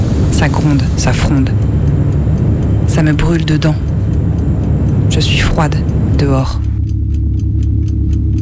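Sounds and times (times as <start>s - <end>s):
clock ticking: 0.0s - 8.4s
continuous low hum: 0.0s - 8.4s
speech: 0.4s - 1.8s, 2.9s - 3.9s, 5.1s - 6.6s.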